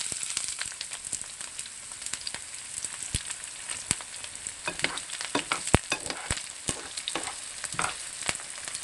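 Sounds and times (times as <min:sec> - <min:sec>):
chopped onion sautéing in a pan of oil: 0:00.0 - 0:08.8
sharp pops and crackles: 0:04.7 - 0:08.4.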